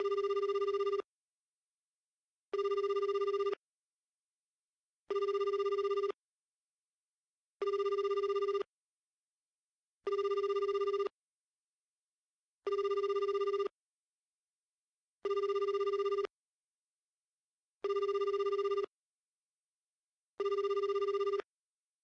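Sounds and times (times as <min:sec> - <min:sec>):
dial tone: 0:00.0 - 0:01.1, 0:02.5 - 0:03.6, 0:05.1 - 0:06.2, 0:07.6 - 0:08.7, 0:10.0 - 0:11.2, 0:12.7 - 0:13.8, 0:15.2 - 0:16.3, 0:17.8 - 0:19.0, 0:20.4 - 0:21.5.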